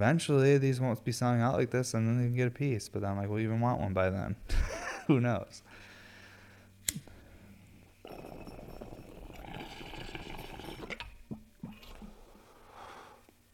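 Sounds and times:
speech: 0:00.0 - 0:05.8
sharp click: 0:06.8 - 0:07.1
water bubbling and gurgling through a pipe: 0:08.1 - 0:12.1.

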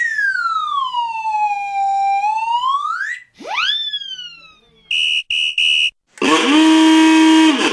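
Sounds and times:
long swooping novelty slide whistle: 0:00.0 - 0:04.3, 0:04.9 - 0:07.7
quick falling novelty whistle: 0:00.0 - 0:06.0.

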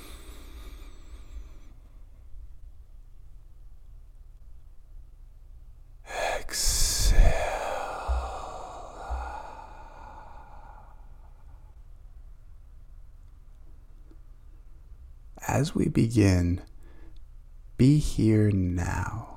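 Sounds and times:
slow deep breathing during a guided meditation: 0:00.0 - 0:02.3, 0:06.1 - 0:11.8, 0:16.8 - 0:17.3
speech: 0:15.6 - 0:16.7, 0:17.8 - 0:19.3.

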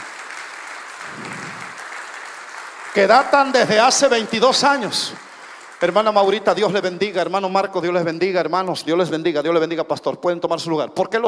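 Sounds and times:
audience applauding: 0:00.0 - 0:07.5
speech: 0:03.0 - 0:05.2, 0:05.8 - 0:11.2.

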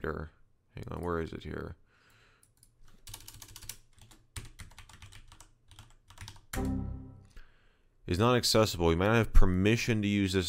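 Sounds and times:
speech: 0:00.0 - 0:01.8, 0:08.1 - 0:10.4
rapid typing on a computer keyboard entering a password: 0:02.4 - 0:06.7.

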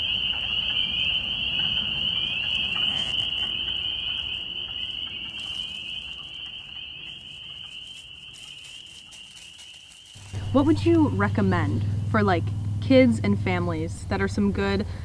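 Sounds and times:
dense chorus of spring peeper frogs calling: 0:00.0 - 0:12.2
low rumble: 0:10.1 - 0:15.0
speech: 0:10.5 - 0:15.0.

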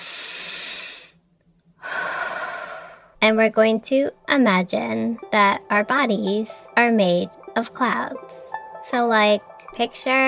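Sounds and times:
deep breath during a guided relaxation exercise: 0:00.0 - 0:01.2, 0:01.8 - 0:03.2
speech: 0:03.2 - 0:10.2.

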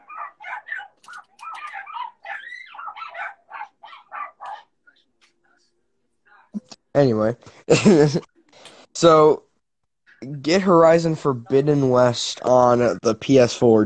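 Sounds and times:
dogs barking and yapping: 0:00.0 - 0:05.0
speech: 0:07.0 - 0:08.3, 0:09.0 - 0:09.4, 0:10.4 - 0:13.8.

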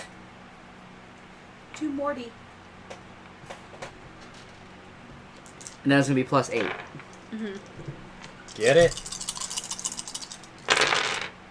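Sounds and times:
speech: 0:01.8 - 0:02.4, 0:05.8 - 0:08.0, 0:08.6 - 0:09.1
damage dice rolling and clicking on a hard table: 0:05.4 - 0:05.8, 0:06.4 - 0:07.3, 0:08.5 - 0:11.4.

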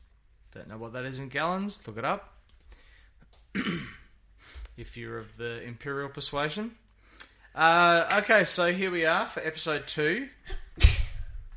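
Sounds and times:
speech: 0:00.5 - 0:02.4, 0:03.3 - 0:04.0, 0:04.8 - 0:06.8, 0:07.6 - 0:10.9
sneeze: 0:10.4 - 0:11.2.

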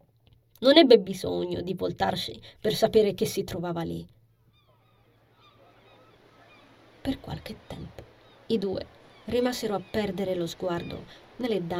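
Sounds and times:
speech: 0:00.6 - 0:04.2, 0:07.0 - 0:11.7
seagulls screeching over sea waves: 0:04.4 - 0:11.7
steady rush of sea waves and surf: 0:04.7 - 0:11.7.

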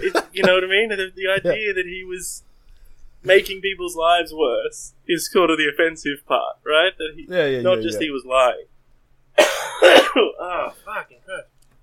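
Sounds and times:
speech: 0:00.0 - 0:02.5, 0:03.2 - 0:08.7, 0:09.4 - 0:11.5
harsh coughs from a person with a lingering illness: 0:09.4 - 0:10.5.

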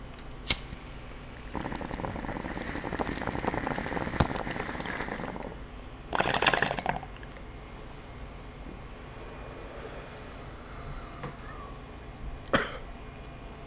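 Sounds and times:
sharp lighter-like click: 0:00.3 - 0:01.2
water pipe gurgling bubbles as someone smokes a bowl: 0:00.8 - 0:12.4.

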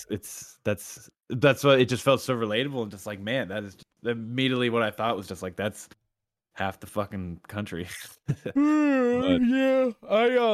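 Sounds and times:
speech: 0:00.0 - 0:06.0, 0:06.6 - 0:10.5
person yawning: 0:08.6 - 0:10.1.

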